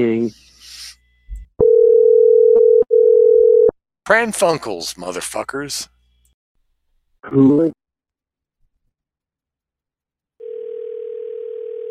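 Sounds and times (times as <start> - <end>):
speech: 0.0 - 0.5, 4.1 - 5.9, 7.2 - 7.8
telephone dial tone while dialing a number: 1.6 - 3.7, 10.4 - 11.8.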